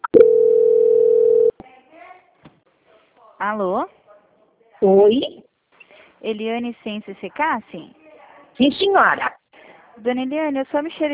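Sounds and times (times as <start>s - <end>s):
telephone line tone during a call transfer: 0.0s - 1.5s
speech: 3.4s - 4.0s, 4.8s - 5.4s, 6.2s - 8.0s, 8.6s - 9.4s, 10.0s - 11.1s.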